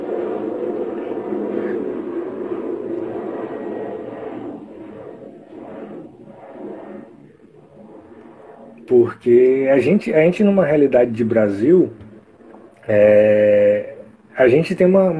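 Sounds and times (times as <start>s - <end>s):
airplane passing overhead: 0.0s - 14.3s
speech: 8.9s - 12.0s, 12.9s - 15.1s.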